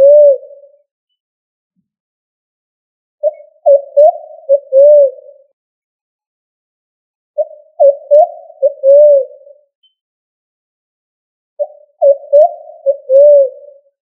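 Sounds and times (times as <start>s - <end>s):
pigeon cooing: 0.0s - 0.7s, 3.2s - 5.5s, 7.4s - 9.6s, 11.6s - 13.8s.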